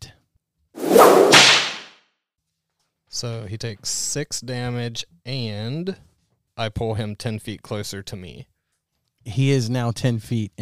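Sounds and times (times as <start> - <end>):
whip crack sound effect: 0.8 - 1.9
speech: 3.2 - 8.5, 9.2 - 10.6.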